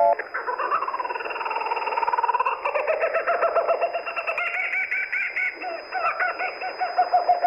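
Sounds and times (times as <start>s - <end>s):
Laughing Kookaburra laugh through band-limited shortwave radio audio: 0.1s - 7.4s.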